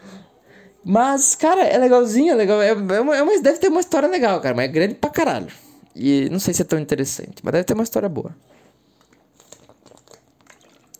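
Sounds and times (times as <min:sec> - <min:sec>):
speech: 0:00.8 - 0:08.6
person drinking water, sipping and swallowing: 0:09.0 - 0:10.9.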